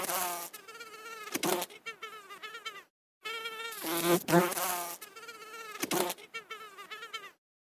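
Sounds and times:
bee buzzing in a wavering drone: 0:00.0 - 0:07.4.

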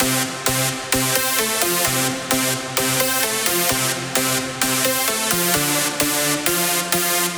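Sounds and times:
electric jazz synth dance lead loop at 130 BPM: 0:00.0 - 0:07.3.

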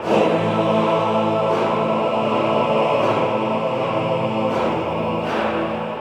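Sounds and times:
choir ensemble singing film music: 0:00.0 - 0:05.9.

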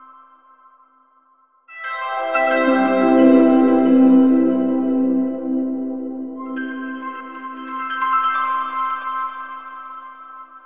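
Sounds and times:
harp sound effect: 0:01.8 - 0:08.6.

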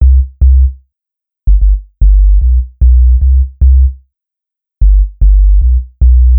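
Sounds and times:
reggae sub bass: 0:00.0 - 0:00.7, 0:01.5 - 0:03.9, 0:04.8 - 0:06.3.

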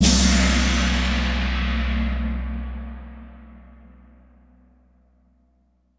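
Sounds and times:
gong: 0:00.0 - 0:04.6
orchestral cymbal hit: 0:00.0 - 0:04.6.

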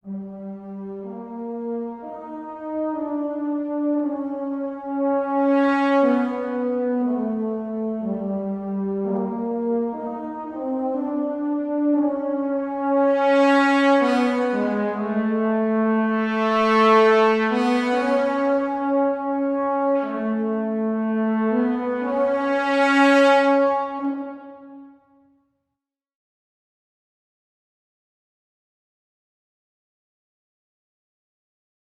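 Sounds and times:
dramatic horn: 0:00.0 - 0:25.2.

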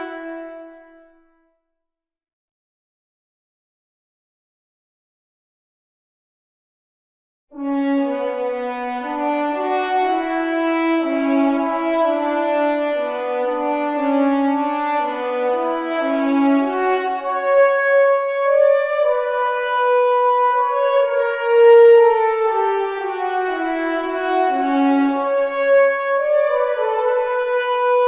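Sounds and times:
solo horn for an adventure film: 0:00.0 - 0:01.5, 0:07.5 - 0:28.0.

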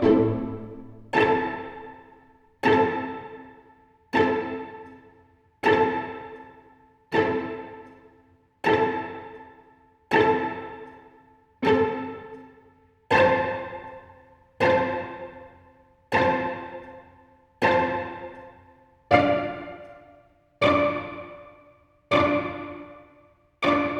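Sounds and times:
pizzicato strings: 0:00.0 - 0:23.9.

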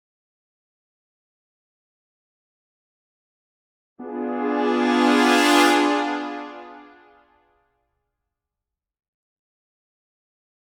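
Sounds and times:
horn swell: 0:04.0 - 0:07.1.

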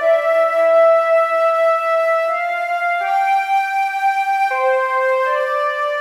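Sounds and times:
silk flute ambient music: 0:00.0 - 0:05.9.

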